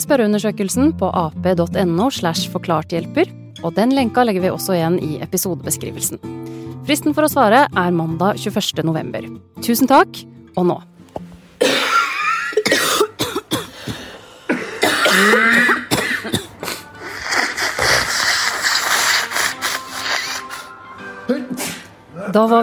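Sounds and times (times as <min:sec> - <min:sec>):
speech: 0:00.0 - 0:11.8, 0:15.2 - 0:16.4, 0:22.3 - 0:22.6
throat clearing: 0:11.6 - 0:16.8, 0:21.5 - 0:21.9
several people coughing: 0:11.6 - 0:19.6.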